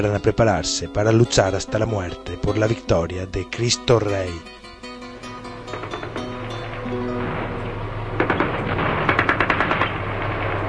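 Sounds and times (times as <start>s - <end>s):
speech: 0.0s - 4.6s
low rumbling background: 0.0s - 10.6s
grenade explosions sound effect in an audio drama: 5.6s - 10.6s
rapid gunfire sound effect in an audio drama: 8.2s - 10.5s.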